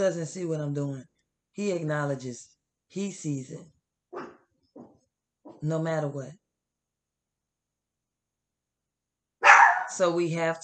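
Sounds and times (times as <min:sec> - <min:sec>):
speech: 0:00.0 - 0:03.8, 0:05.6 - 0:06.4, 0:09.9 - 0:10.6
loud sharp dog bark: 0:04.2 - 0:04.4, 0:09.4 - 0:10.0.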